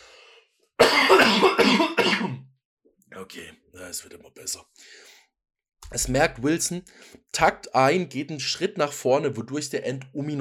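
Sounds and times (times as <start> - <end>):
person coughing harshly: 0.8 - 2.4
speech: 3.2 - 5.2, 5.9 - 10.3.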